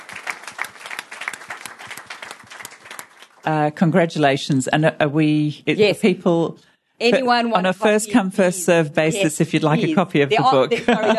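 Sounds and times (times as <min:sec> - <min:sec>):
audience applause: 0:00.0 - 0:03.5
speech: 0:03.4 - 0:11.1
laughter: 0:09.9 - 0:11.1.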